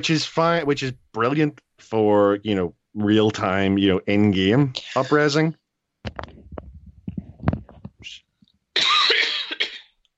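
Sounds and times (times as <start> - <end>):
speech: 0.0 - 6.4
person coughing: 8.8 - 10.0
throat clearing: 8.8 - 10.0.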